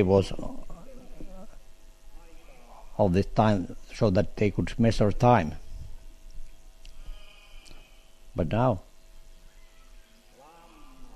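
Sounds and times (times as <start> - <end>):
speech: 0.0 - 0.6, 3.0 - 5.6, 8.4 - 8.9
single loud sheep bleat: 10.4 - 11.1.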